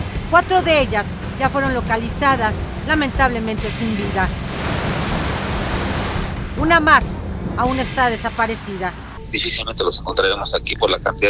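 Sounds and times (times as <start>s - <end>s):
roar of rushing floodwater in an overflowing ravine: 0.0s - 8.0s
speech: 0.3s - 4.5s, 6.6s - 11.2s.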